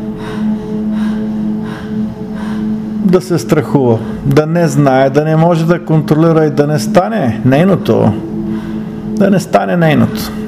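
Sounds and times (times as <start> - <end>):
heavy forceful breathing in rhythmic surges: 0.0 - 4.4, 8.2 - 9.2
steady low tonal hum: 0.0 - 10.4
speech: 3.1 - 8.3, 9.2 - 10.4.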